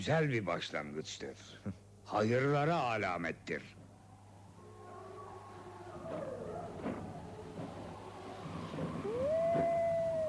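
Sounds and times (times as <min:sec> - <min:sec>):
speech: 0:00.0 - 0:03.8
wolves howling: 0:04.0 - 0:10.2.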